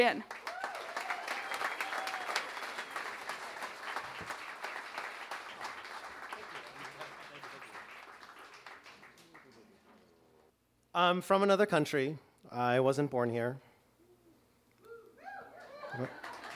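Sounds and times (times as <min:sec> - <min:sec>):
speech: 0:00.0 - 0:00.4, 0:11.0 - 0:13.7, 0:16.0 - 0:16.2
crowd applauding: 0:00.0 - 0:10.3, 0:15.4 - 0:16.5.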